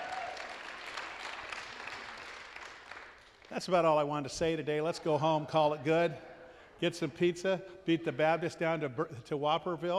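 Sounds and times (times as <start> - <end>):
audience applauding: 0.0 - 3.8
speech: 3.5 - 9.9.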